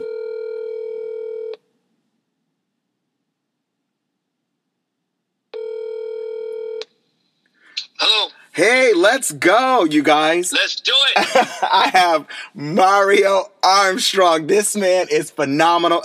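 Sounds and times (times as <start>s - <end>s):
telephone ringing tones of an outgoing call: 0.0s - 1.6s, 5.6s - 6.8s
speech: 8.6s - 16.0s
laughter: 11.1s - 12.4s.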